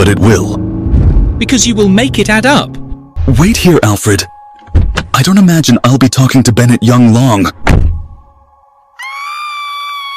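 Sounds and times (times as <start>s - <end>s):
speech: 0.1s - 0.6s, 1.4s - 4.3s, 5.2s - 7.8s
low thump: 0.8s - 1.4s, 4.7s - 5.1s, 7.6s - 8.1s.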